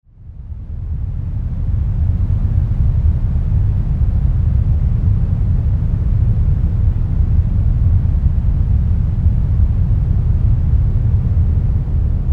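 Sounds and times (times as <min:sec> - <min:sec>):
rumble noise soundscape: 0:00.5 - 0:12.3.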